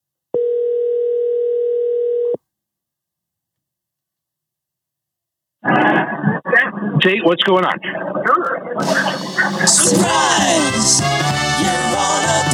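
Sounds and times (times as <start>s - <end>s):
telephone dial tone as a phone call is placed: 0.4s - 2.4s
laughter: 5.6s - 11.0s
speech: 7.0s - 12.5s
loud burst of noise: 8.8s - 11.0s.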